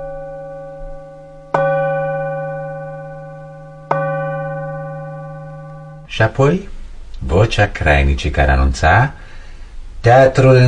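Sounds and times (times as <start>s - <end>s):
radio station time-signal gong strikes marking the hour: 0.0s - 6.1s
speech: 6.1s - 9.2s, 10.0s - 10.6s.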